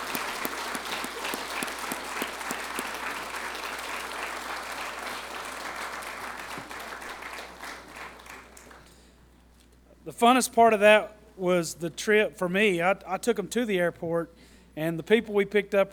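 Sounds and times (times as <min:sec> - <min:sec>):
crowd applauding: 0:00.0 - 0:09.0
speech: 0:10.1 - 0:15.9.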